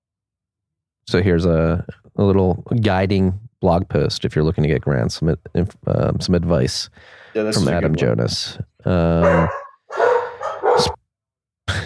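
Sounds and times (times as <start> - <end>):
speech: 1.1 - 10.0
dogs barking: 9.2 - 11.0.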